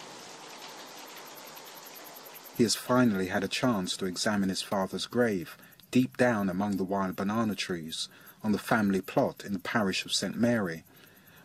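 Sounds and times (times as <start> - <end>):
tropical rain drumming on zinc roofs: 0.0 - 3.5
speech: 2.6 - 10.9.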